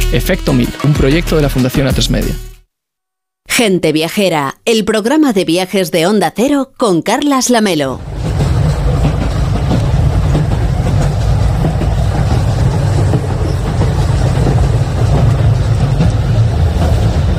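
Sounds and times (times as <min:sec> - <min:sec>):
speech: 0:00.1 - 0:02.5, 0:03.5 - 0:08.2
train travelling on rails: 0:08.0 - 0:17.3.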